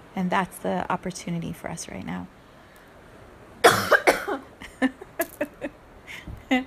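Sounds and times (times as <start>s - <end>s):
speech: 0.2s - 2.4s
person coughing: 3.6s - 4.5s.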